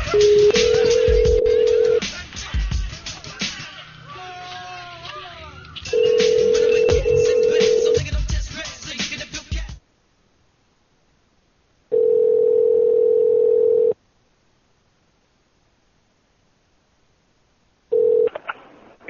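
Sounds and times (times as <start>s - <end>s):
steady telephone dial tone: 0.2s - 2.0s, 6.0s - 8.0s, 11.9s - 14.0s, 17.9s - 18.3s.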